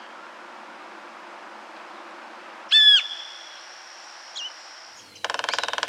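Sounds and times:
bird drumming in the Costa Rican cloud forest: 2.7 - 3.6, 4.4 - 5.8
birds of the Costa Rican cloud forest calling: 2.7 - 5.8.

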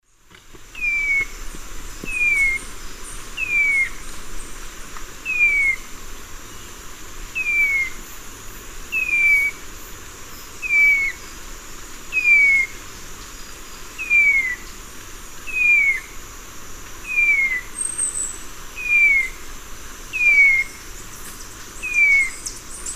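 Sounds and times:
Vireolanius leucotis song in the Eastern Lowlands of South America: 0.8 - 4.6, 5.2 - 5.9, 6.5 - 8.0, 8.9 - 9.6, 10.4 - 11.4, 12.1 - 14.8, 15.4 - 16.2, 17.0 - 19.4, 20.1 - 22.9.

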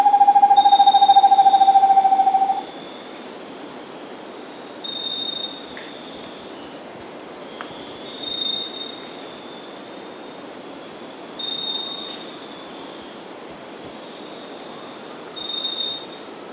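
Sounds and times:
Vermiculated screech owl trilling in South America: 0.0 - 2.6.

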